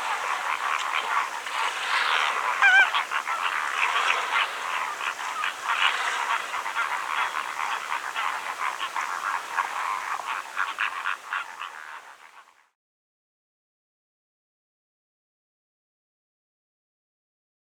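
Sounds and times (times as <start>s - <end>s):
greater flamingos honking: 0.0s - 12.3s.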